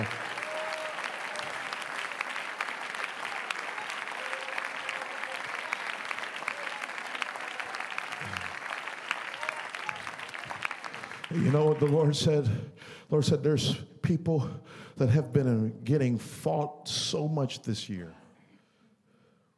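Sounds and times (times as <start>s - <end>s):
standing congregation clapping hands at a church service: 0.0s - 12.5s
speech: 11.3s - 18.2s.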